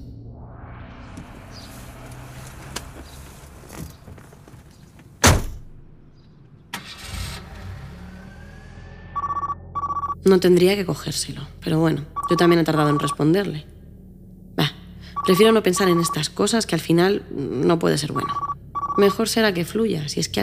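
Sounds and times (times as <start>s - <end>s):
car engine humming: 1.1s - 20.4s
sharp thump in a car: 5.2s - 5.7s
phone ringing through car hands-free system: 9.2s - 10.2s, 12.2s - 13.2s, 15.2s - 16.3s, 18.1s - 19.3s
speech: 10.3s - 13.7s, 14.6s - 20.4s.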